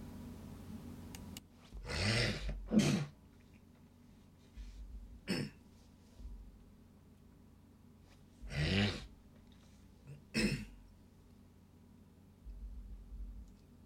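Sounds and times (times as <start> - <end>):
person clearing throat: 1.8 - 3.2, 5.2 - 5.6, 8.5 - 9.1, 10.1 - 10.8
person coughing: 1.8 - 3.2, 5.2 - 5.6, 10.1 - 10.8.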